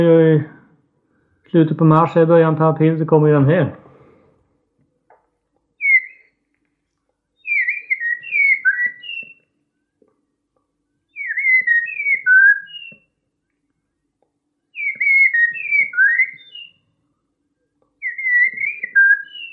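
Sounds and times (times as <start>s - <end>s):
speech: 0.0s - 0.6s, 1.5s - 3.8s
person whistling an imitation of common blackbird song: 5.8s - 6.2s, 7.4s - 9.4s, 11.2s - 13.0s, 14.8s - 16.7s, 18.0s - 19.5s.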